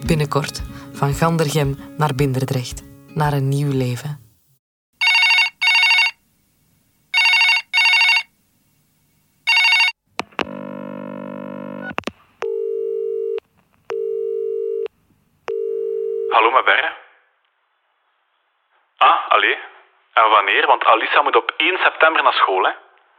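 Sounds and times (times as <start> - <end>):
speech: 0.0 - 4.2, 20.2 - 22.8
telephone ringing in short electronic bursts: 5.0 - 6.2, 7.1 - 8.3, 9.5 - 14.9, 15.5 - 16.4
steady dial tone: 9.5 - 14.9, 15.5 - 16.3.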